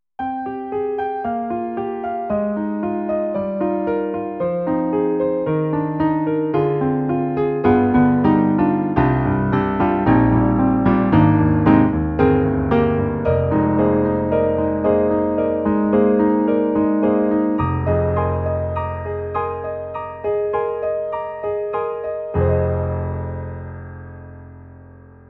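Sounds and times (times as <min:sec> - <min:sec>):
mild contemporary acoustic piano on a sound module: 0:00.2 - 0:25.2.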